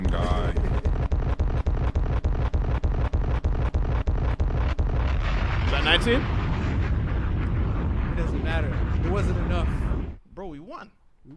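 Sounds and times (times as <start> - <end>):
explosion sound effects from an explosion button: 0.0 - 10.2
speech: 5.8 - 6.4, 8.2 - 9.8, 10.5 - 11.3.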